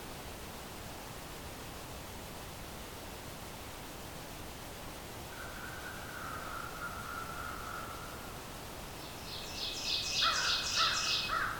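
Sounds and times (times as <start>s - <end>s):
steady hiss: 0.0s - 11.5s
American crow cawing: 5.4s - 8.2s, 10.2s - 11.5s.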